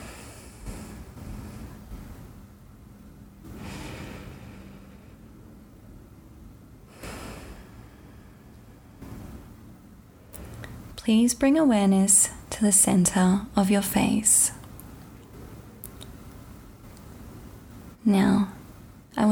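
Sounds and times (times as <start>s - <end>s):
faint steady low hum: 0.0s - 19.3s
deep breaths in and out through the nose during a sleep meditation: 3.5s - 5.5s, 6.9s - 9.1s
speech: 11.1s - 14.6s, 18.1s - 18.5s.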